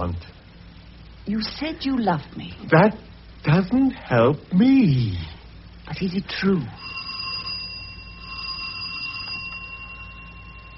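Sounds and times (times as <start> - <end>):
speech: 0.0 - 0.4, 1.2 - 6.9
doorbell ringing: 6.8 - 10.7.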